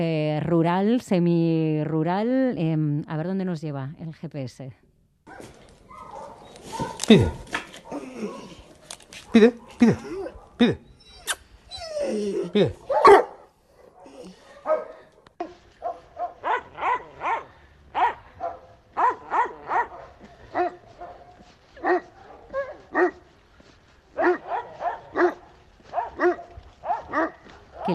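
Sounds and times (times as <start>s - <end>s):
speech: 0.0s - 5.6s, 6.8s - 7.5s, 9.3s - 10.9s, 12.1s - 12.8s
dog barking and yipping while playing: 5.3s - 23.3s, 24.1s - 27.9s.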